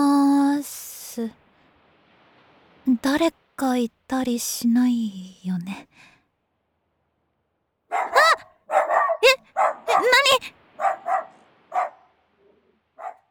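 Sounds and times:
speech: 0:01.2 - 0:01.4, 0:03.0 - 0:06.1
stray dog barking and yipping: 0:07.9 - 0:13.2
person's brief startled exclamations: 0:08.2 - 0:08.4.

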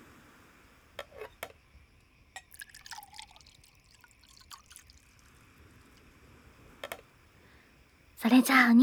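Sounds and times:
orange juice being poured into a glass: 0:02.4 - 0:06.1
speech: 0:08.2 - 0:08.8.

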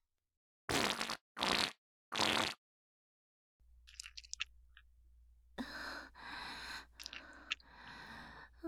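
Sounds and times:
loose fart with loose stool: 0:00.7 - 0:02.6.

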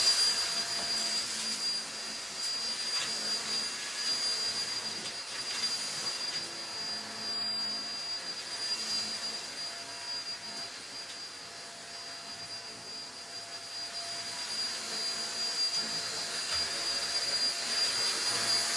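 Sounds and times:
cordless vacuum cleaner sucking up loose hair: 0:00.0 - 0:18.7.

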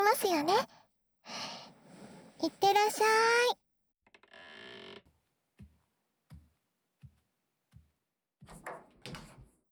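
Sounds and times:
speech: 0:00.1 - 0:00.7, 0:02.4 - 0:03.6
door opening and closing: 0:04.1 - 0:05.1, 0:08.5 - 0:09.5
soft footsteps thudding: 0:05.6 - 0:08.7.

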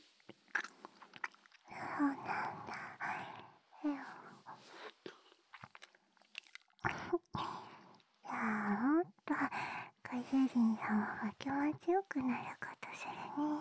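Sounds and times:
crunchy chewing: 0:00.2 - 0:01.7, 0:04.9 - 0:06.8
person whispering: 0:01.7 - 0:05.3, 0:08.3 - 0:13.6
speech: 0:10.3 - 0:13.6.

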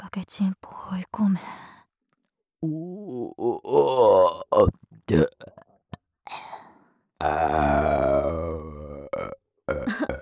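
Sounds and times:
speech: 0:00.1 - 0:01.7, 0:02.6 - 0:05.5
person burping: 0:02.6 - 0:05.7, 0:07.2 - 0:10.1.

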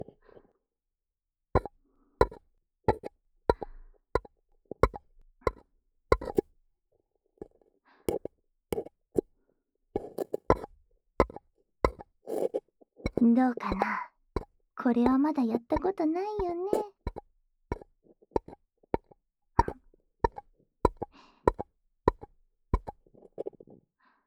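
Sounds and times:
hollow tapping on paper cups covering a microphone: 0:01.6 - 0:04.3, 0:04.8 - 0:06.4, 0:08.1 - 0:08.9, 0:10.0 - 0:10.7, 0:11.2 - 0:23.6
speech: 0:13.2 - 0:14.1, 0:14.8 - 0:16.8.

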